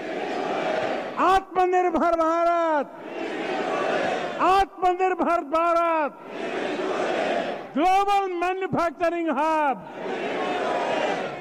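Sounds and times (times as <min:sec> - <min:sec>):
large crowd roaring: 0:00.0 - 0:01.2, 0:03.0 - 0:04.4, 0:06.2 - 0:07.7, 0:09.9 - 0:11.4
speech: 0:01.4 - 0:03.4, 0:04.4 - 0:06.6, 0:07.7 - 0:10.4.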